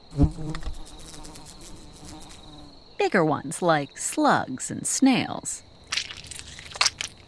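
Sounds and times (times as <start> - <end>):
flies and wasps buzzing: 0.0 - 3.7, 5.7 - 7.2
speech: 3.1 - 5.7.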